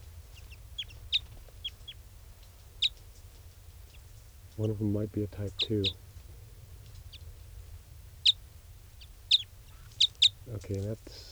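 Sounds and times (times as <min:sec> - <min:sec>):
type 5 birds giving sharp high chip calls: 0:00.2 - 0:02.0, 0:02.6 - 0:03.1, 0:03.8 - 0:06.1, 0:08.1 - 0:11.3
speech: 0:04.6 - 0:06.0, 0:10.5 - 0:11.3.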